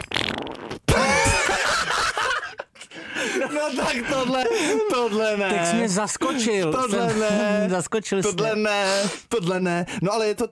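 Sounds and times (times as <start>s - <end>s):
loud sputtering fart: 0.0s - 1.2s
laughter: 0.9s - 8.5s
speech: 3.6s - 10.4s.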